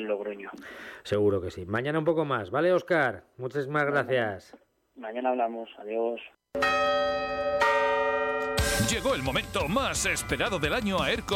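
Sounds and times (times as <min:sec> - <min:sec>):
speech: 0:00.0 - 0:07.7, 0:08.8 - 0:11.3
loud ringing bell chimes: 0:06.6 - 0:09.6.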